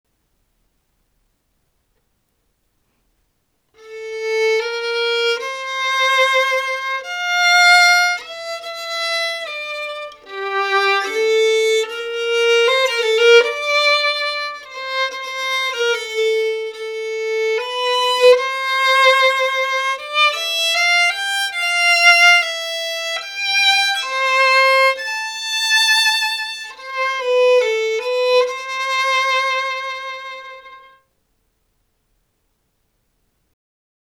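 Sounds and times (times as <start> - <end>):
violin melody: 3.8 - 31.0.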